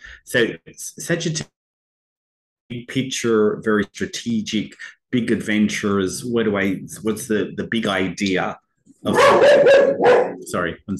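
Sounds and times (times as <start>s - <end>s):
speech: 0.2s - 1.6s, 2.7s - 10.9s
pet dog barking: 9.1s - 10.5s.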